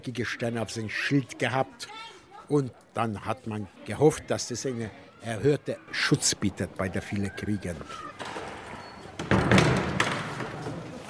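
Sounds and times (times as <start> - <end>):
speech: 0.0 - 8.3
door being unlocked and pushed open by a man: 8.1 - 10.7.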